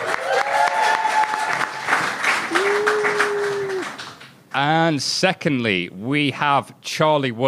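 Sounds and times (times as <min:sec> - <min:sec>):
audience applauding a guest being introduced: 0:00.0 - 0:04.8
speech: 0:04.6 - 0:07.4.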